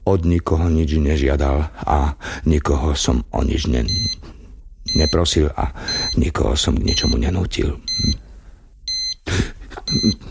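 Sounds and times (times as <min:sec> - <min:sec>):
speech: 0:00.1 - 0:04.3, 0:04.9 - 0:08.2
electronic wristwatch beeping in high-pitched bursts: 0:03.9 - 0:04.2, 0:05.9 - 0:06.2, 0:06.9 - 0:07.2, 0:07.9 - 0:08.2, 0:08.9 - 0:10.2.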